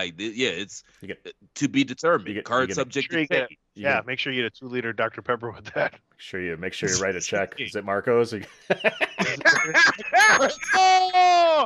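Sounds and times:
speech: 0.0 - 11.6
lively chatter and laughter: 1.7 - 5.9, 6.6 - 11.0
bright metallic bell ringing: 8.7 - 11.3.

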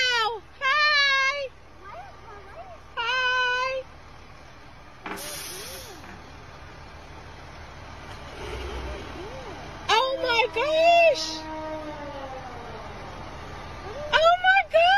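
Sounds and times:
fire truck engine rumble driving past a house: 0.0 - 14.9
fire truck air brakes hissing: 5.1 - 6.2.

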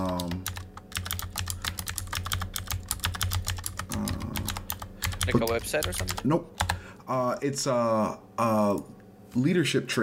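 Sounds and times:
typing on a computer keyboard: 0.0 - 6.8
low hum: 0.0 - 10.0
speech: 5.3 - 10.0.

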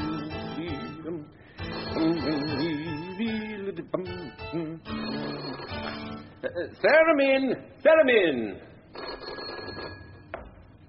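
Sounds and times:
telephone ringing: 1.6 - 3.6, 4.9 - 6.3, 8.9 - 10.4
speech: 6.6 - 8.7.

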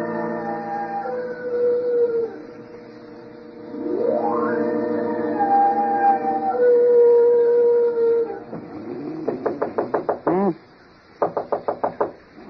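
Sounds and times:
long wavering howl: 0.2 - 2.6, 3.7 - 9.2
sharp knocks on a bedroom door: 9.1 - 10.6, 11.2 - 12.2.

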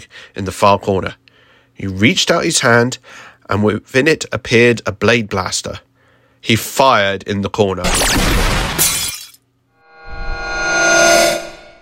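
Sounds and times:
speech: 0.0 - 1.2, 1.8 - 8.9
red ruby shattering with crystalline fragments scattering: 7.9 - 9.4
ringing shimmer of glassy tones: 9.9 - 11.8.

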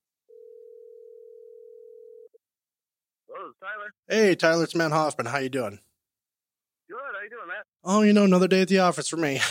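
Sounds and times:
telephone dial tone as a phone call is placed: 0.3 - 2.4
speech: 3.4 - 5.9, 7.3 - 9.4.

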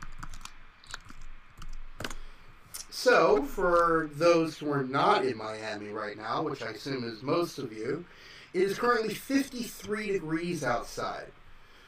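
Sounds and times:
fingers typing on a computer keyboard to pull up a weather alert: 0.0 - 2.2
speech: 3.0 - 11.4.

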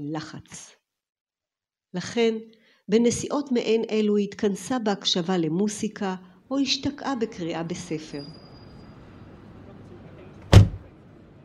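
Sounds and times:
speech: 0.0 - 0.8, 1.9 - 8.5
taxi trunk slamming shut: 10.4 - 10.8.

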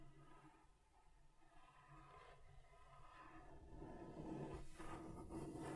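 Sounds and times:
something scratched back and forth across a table surface: 3.9 - 5.7.

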